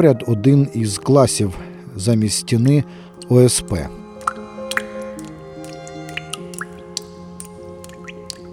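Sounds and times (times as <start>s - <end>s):
speech: 0.0s - 4.0s
water from leaking roof dripping into a filled bathtub: 3.2s - 3.4s, 4.2s - 8.5s.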